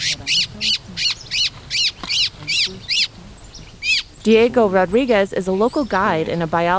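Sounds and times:
distressed white-throated thrush giving harsh rasping squawks: 0:00.0 - 0:04.2
faint low murmur: 0:00.0 - 0:06.7
speech: 0:04.2 - 0:06.7.

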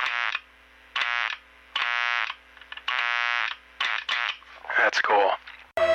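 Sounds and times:
harsh electrical buzz from a dimmed light bulb: 0:00.0 - 0:04.6
speech: 0:04.9 - 0:05.4.

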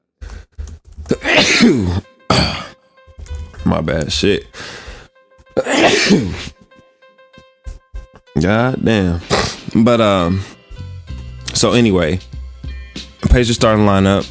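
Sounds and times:
speech: 0:01.1 - 0:02.6, 0:03.7 - 0:04.8, 0:05.9 - 0:06.5, 0:08.4 - 0:10.6, 0:11.6 - 0:12.3, 0:13.3 - 0:14.3
stifled sneeze: 0:01.1 - 0:02.7, 0:05.6 - 0:06.6, 0:09.2 - 0:09.8
man muttering: 0:01.1 - 0:02.8, 0:09.2 - 0:09.8.

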